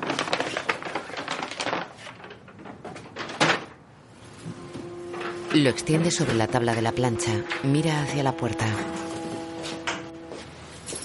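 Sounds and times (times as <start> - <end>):
stiff paper bag crinkling as a dress is pulled out: 0.0 - 2.5
speech: 5.5 - 9.1.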